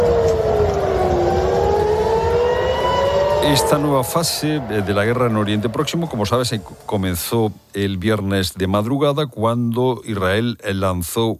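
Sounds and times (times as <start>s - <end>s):
wailing siren: 0.0s - 7.6s
rumbling background: 0.0s - 10.4s
speech: 3.4s - 11.3s.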